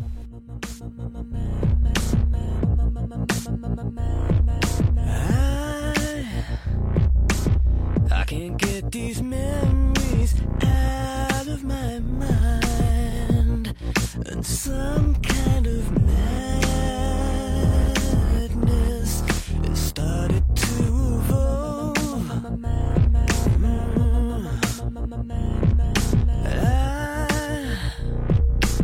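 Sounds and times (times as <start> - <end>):
sustained low drone: 0.0 - 8.0, 9.4 - 10.9, 11.6 - 28.8
steady drum beat in a band's song: 1.6 - 3.5, 4.3 - 6.2, 6.9 - 8.8, 9.5 - 11.5, 12.2 - 14.2, 14.9 - 24.9, 25.6 - 27.6, 28.3 - 28.8.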